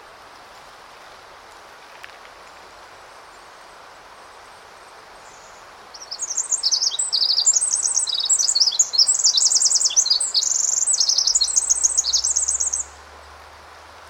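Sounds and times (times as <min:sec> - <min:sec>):
soft background hiss: 0:00.0 - 0:14.0
male Pacific wren singing rapid high tinkling trills perched on a forest snag: 0:05.3 - 0:13.0.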